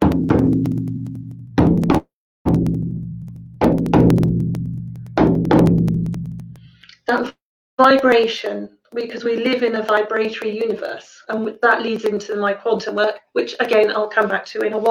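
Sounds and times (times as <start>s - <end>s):
shamanic drum beaten in heartbeat rhythm: 0.0s - 6.7s
speech: 7.1s - 14.8s.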